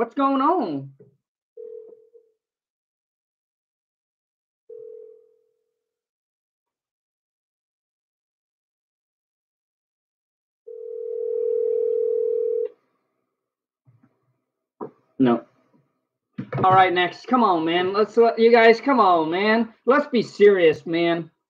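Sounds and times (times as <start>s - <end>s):
speech: 0.0s - 1.0s, 15.2s - 15.5s, 16.5s - 21.3s
telephone dial tone while calling a phone number: 10.7s - 12.8s.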